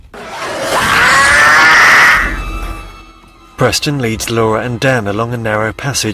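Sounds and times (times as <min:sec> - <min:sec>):
alien creature in labor shrieking in pain: 0:00.2 - 0:02.4
speech: 0:03.6 - 0:06.1.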